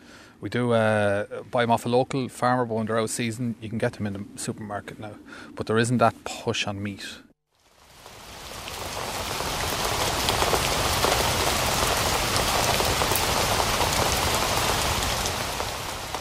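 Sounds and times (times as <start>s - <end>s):
speech: 0.4s - 7.3s
rain pattering on a hard surface: 7.5s - 16.1s.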